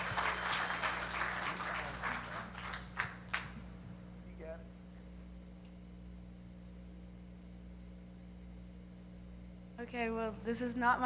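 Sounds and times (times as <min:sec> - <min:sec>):
audience clapping after a performer is introduced at an event: 0:00.0 - 0:03.7
low steady hum: 0:00.0 - 0:11.0
speech: 0:09.8 - 0:11.0.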